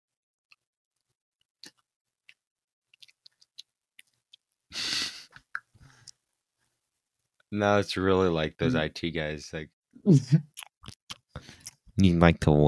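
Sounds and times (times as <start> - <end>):
chewing a jelly bean: 1.6 - 4.4, 10.5 - 11.8
sticky mouth clicks and smacks: 1.6 - 4.5, 10.5 - 11.8
speech: 7.5 - 10.6, 12.0 - 12.6.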